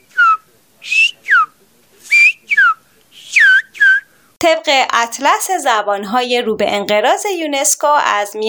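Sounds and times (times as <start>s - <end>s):
villager whistling the Greek alphabet in a whistled language: 0.0s - 4.1s
speech: 4.7s - 8.4s.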